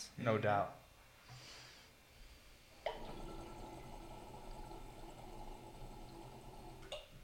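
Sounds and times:
quiet hiss: 0:00.0 - 0:07.2
water rushing and gurgling through a glass piece: 0:02.9 - 0:07.2.

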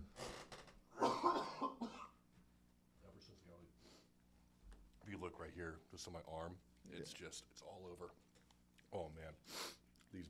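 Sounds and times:
person coughing harshly: 0:01.0 - 0:02.2
speech: 0:05.1 - 0:08.3, 0:08.9 - 0:10.2.

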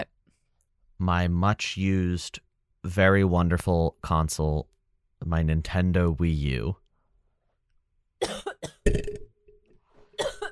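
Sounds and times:
speech: 0:01.0 - 0:06.8, 0:08.2 - 0:09.2
person coughing: 0:08.2 - 0:09.3, 0:10.1 - 0:10.5.

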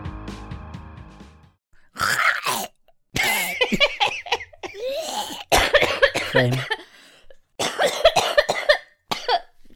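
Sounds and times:
person coughing in harsh strained bursts: 0:02.0 - 0:06.9, 0:07.6 - 0:09.5
speech: 0:06.4 - 0:06.8.

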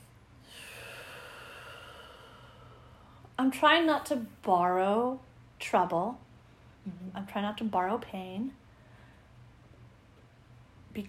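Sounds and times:
deep breath taken together: 0:00.4 - 0:03.3, 0:08.7 - 0:09.4
speech: 0:03.4 - 0:06.2, 0:06.8 - 0:08.6.

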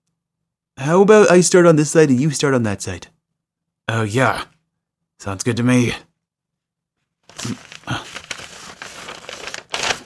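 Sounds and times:
speech: 0:00.8 - 0:03.2, 0:03.9 - 0:04.5, 0:05.2 - 0:06.1, 0:07.3 - 0:08.0
wrapping paper torn off a package: 0:07.3 - 0:10.0.

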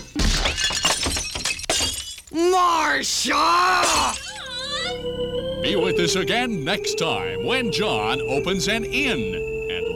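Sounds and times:
light bulbs being smashed, glass shattering: 0:00.0 - 0:02.3, 0:03.8 - 0:04.5
speech: 0:02.4 - 0:04.2, 0:04.8 - 0:09.5.

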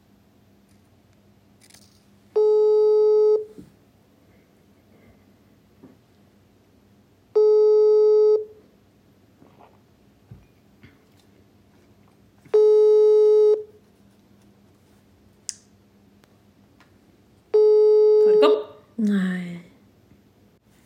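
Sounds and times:
phone ringback tone through a speakerphone: 0:02.4 - 0:03.5, 0:07.4 - 0:08.5, 0:12.5 - 0:13.7, 0:17.6 - 0:18.4.

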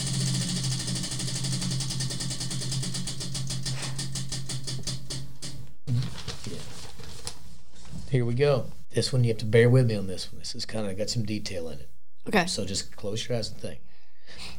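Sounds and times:
party game prize wheel spinning and ticking: 0:00.0 - 0:05.6
speech: 0:08.1 - 0:13.9.

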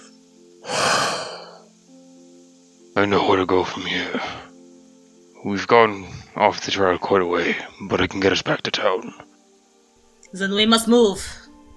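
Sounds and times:
deep breath let out as a long airy sigh: 0:00.6 - 0:01.7
speech: 0:03.0 - 0:04.5, 0:05.4 - 0:09.3, 0:10.3 - 0:11.4.

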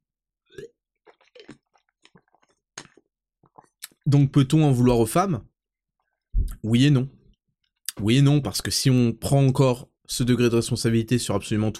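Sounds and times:
clicking squishy swallows and gulps: 0:00.5 - 0:04.0
person slurping a sip of a drink: 0:00.6 - 0:04.0
speech: 0:04.1 - 0:05.5, 0:06.6 - 0:07.2, 0:08.0 - 0:11.7.

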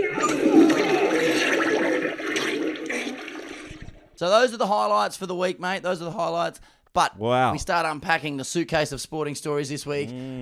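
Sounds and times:
toilet flushing: 0:00.0 - 0:04.2
speech: 0:04.2 - 0:10.4.

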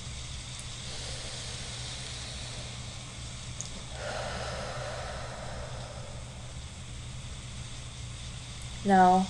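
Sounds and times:
deep breath in and out: 0:00.7 - 0:08.0
speech: 0:08.8 - 0:09.2.

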